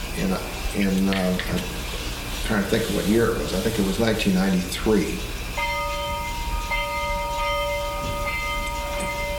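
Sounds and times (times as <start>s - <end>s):
speech: 0.2s - 1.9s, 2.5s - 5.4s
bell of a bus to town ringing: 5.6s - 9.3s.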